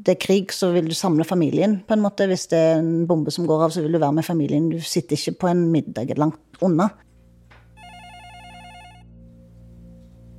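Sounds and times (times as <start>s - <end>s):
speech: 0.0s - 7.1s
landline telephone ringing with electronic trill: 7.8s - 9.2s.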